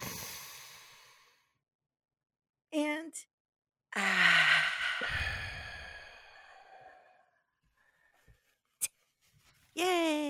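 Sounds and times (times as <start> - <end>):
deep breath in: 0.0 - 1.5, 4.0 - 8.2.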